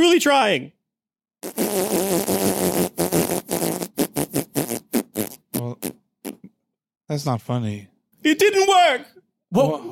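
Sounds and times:
speech: 0.0 - 0.8, 1.4 - 2.3, 7.1 - 9.9
fart: 1.4 - 6.6.

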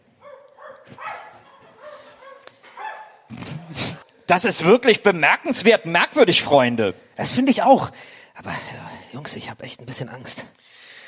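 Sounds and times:
dog barking: 0.2 - 3.3
speech: 3.3 - 10.8.

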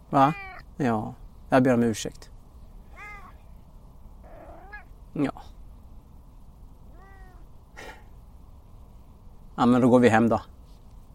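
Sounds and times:
steady low hiss of outdoor noise: 0.0 - 11.1
domestic cat meowing: 0.1 - 0.7, 2.9 - 3.5, 4.2 - 4.9, 6.9 - 7.5
speech: 0.1 - 2.3, 5.2 - 5.5, 9.6 - 10.5
sharp rustle: 10.5 - 11.1.

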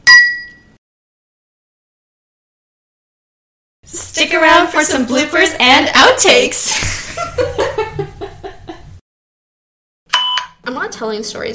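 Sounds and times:
wine glasses clinking in a toast: 0.0 - 0.7
speech: 3.9 - 7.6, 11.0 - 11.5
laughter: 6.7 - 9.0.

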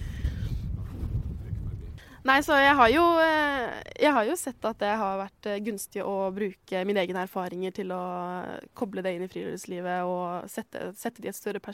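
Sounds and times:
strong wind gusting against microphone: 0.0 - 5.2
speech: 2.2 - 11.7.

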